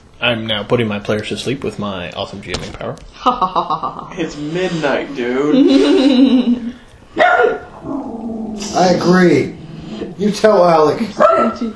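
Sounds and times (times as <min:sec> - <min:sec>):
speech: 0:00.2 - 0:08.0, 0:08.7 - 0:11.7
laughter: 0:04.8 - 0:06.8
dog barking: 0:07.2 - 0:07.7, 0:11.2 - 0:11.7.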